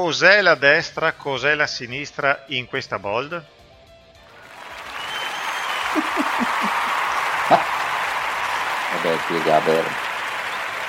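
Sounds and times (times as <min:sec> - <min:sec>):
speech: 0:00.0 - 0:03.6, 0:09.1 - 0:10.1
group applauding: 0:04.4 - 0:10.8
people laughing: 0:05.7 - 0:10.0.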